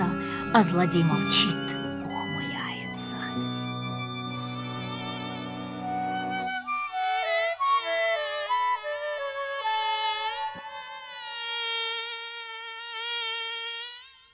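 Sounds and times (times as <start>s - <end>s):
low humming drone: 0.0s - 7.0s
mosquito buzzing in flight: 0.0s - 14.3s
speech: 0.5s - 1.6s.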